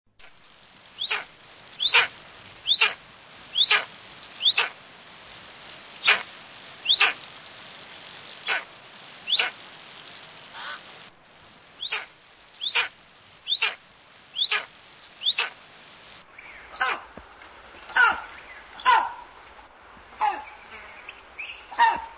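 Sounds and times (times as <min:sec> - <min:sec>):
tawny eagle calling: 0:01.0 - 0:04.8, 0:06.0 - 0:07.2, 0:08.4 - 0:09.6, 0:10.5 - 0:10.9, 0:11.8 - 0:15.6, 0:16.4 - 0:17.2, 0:17.9 - 0:19.4, 0:20.1 - 0:22.1.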